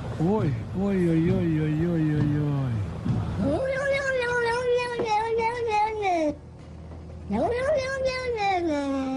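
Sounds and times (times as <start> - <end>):
speech: 0.2 - 3.6
cat meowing in long wails: 3.4 - 6.0, 7.3 - 9.1.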